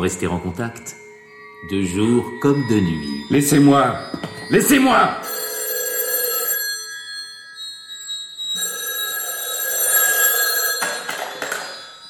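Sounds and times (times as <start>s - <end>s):
speech: 0.0s - 1.0s, 1.6s - 5.3s
telephone ringing: 4.2s - 12.0s.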